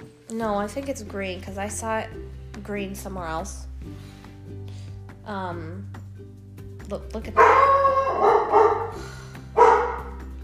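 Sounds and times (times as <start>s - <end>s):
speech: 0.3s - 4.2s, 5.3s - 6.0s, 6.9s - 9.1s
dog barking: 7.4s - 9.0s, 9.6s - 10.2s.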